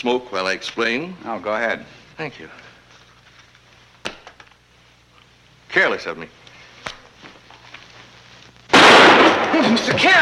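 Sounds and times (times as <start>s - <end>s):
speech: 0.0s - 2.7s, 5.7s - 6.4s, 9.5s - 10.2s
gunshot fired at point-blank range: 8.7s - 9.8s.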